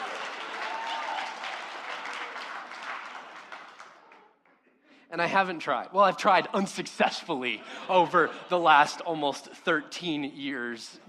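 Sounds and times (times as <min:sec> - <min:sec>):
audience applause: 0:00.0 - 0:04.3
speech: 0:05.1 - 0:11.0
laughter: 0:06.6 - 0:09.9.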